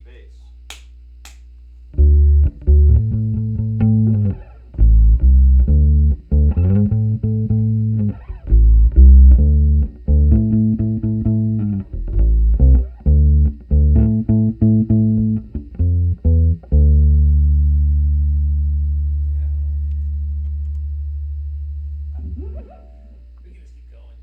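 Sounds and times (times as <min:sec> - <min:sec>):
1973 bass: 0:00.0 - 0:24.2.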